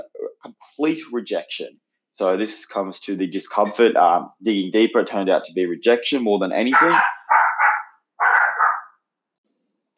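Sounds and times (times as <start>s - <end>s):
speech: 0.8s - 7.2s
dogs barking: 6.7s - 8.9s.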